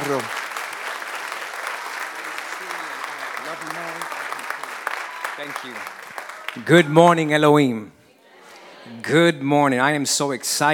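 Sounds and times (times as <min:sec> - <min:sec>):
audience applauding to welcome a guest pastor: 0:00.0 - 0:07.3
speech: 0:00.1 - 0:00.4, 0:03.5 - 0:04.1, 0:05.4 - 0:08.0, 0:08.9 - 0:10.7.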